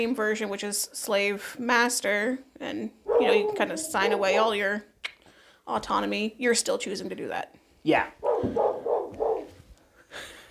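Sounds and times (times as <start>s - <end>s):
speech: 0.0s - 4.9s, 5.7s - 8.7s
female dog barking outside at people talking: 3.1s - 4.8s, 8.2s - 9.6s.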